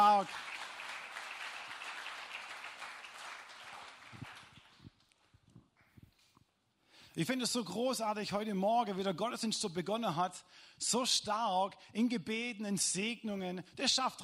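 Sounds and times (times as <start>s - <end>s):
crowd applauding a band: 0.0s - 5.1s
speech: 7.2s - 14.2s.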